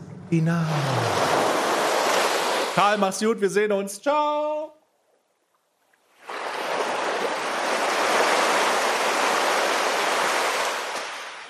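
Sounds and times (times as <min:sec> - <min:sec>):
ocean waves washing in a dense rush of surf: 0:00.0 - 0:03.3, 0:06.1 - 0:11.4
speech: 0:00.3 - 0:01.3, 0:02.8 - 0:04.7.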